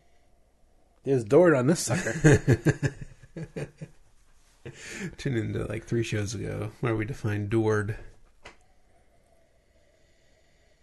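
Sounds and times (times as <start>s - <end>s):
speech: 1.0s - 4.0s, 4.6s - 8.1s
laughter: 1.9s - 3.9s
person sniffing a beer: 4.7s - 5.2s.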